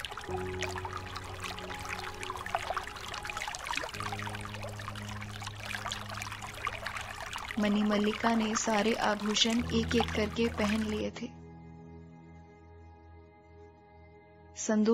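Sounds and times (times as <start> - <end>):
river water churning and splashing from a moving boat: 0.0 - 11.1
speech: 7.6 - 11.4, 14.6 - 14.9.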